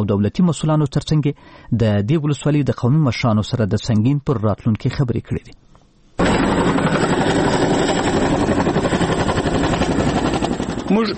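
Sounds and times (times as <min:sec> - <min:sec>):
speech: 0:00.0 - 0:05.8, 0:10.9 - 0:11.1
American Chinook helicopter in flight over northern Helmand: 0:06.2 - 0:11.1.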